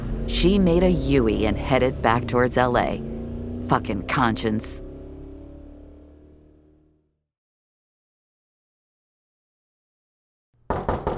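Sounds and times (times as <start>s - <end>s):
low engine-like hum: 0.0s - 7.0s
speech: 0.3s - 3.1s, 3.7s - 4.8s
loud knocks on a door: 10.7s - 11.1s.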